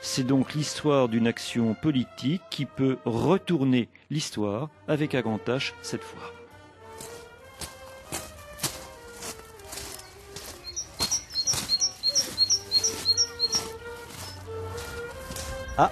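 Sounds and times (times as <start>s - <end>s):
speech: 0.2s - 6.4s, 15.8s - 15.9s
footsteps: 6.9s - 15.9s
great tit singing on the pit head of a coal mine: 9.9s - 14.4s, 15.6s - 15.9s.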